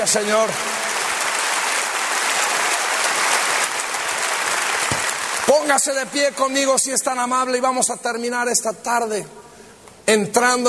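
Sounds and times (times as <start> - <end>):
speech: 0.0 - 0.7, 5.5 - 10.6
large audience applause: 0.0 - 5.9.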